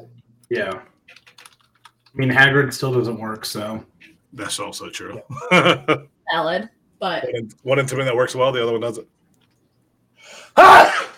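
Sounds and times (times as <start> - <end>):
speech: 0.5 - 1.2, 2.1 - 9.2, 10.2 - 11.0
laughter: 5.2 - 6.1
person sneezing theatrically: 10.5 - 11.1.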